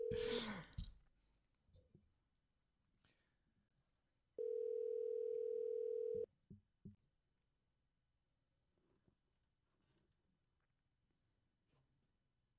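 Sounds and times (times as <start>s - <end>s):
telephone dial tone while calling back: 4.4s - 6.3s.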